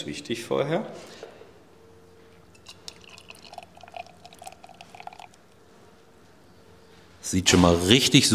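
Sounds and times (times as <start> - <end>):
speech: 0.0 - 1.3, 7.3 - 8.3
liquid sloshing and splashing inside a glass: 2.5 - 5.7.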